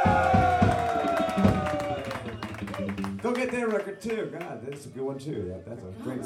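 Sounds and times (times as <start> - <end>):
crowd applauding and cheering: 0.0 - 4.9
speech: 3.4 - 6.2.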